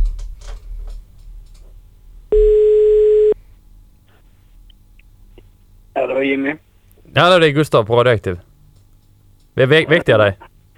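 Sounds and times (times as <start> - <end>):
electronic ringback tone of an outgoing phone call: 2.3 - 3.4
speech: 6.1 - 8.5, 9.6 - 10.5.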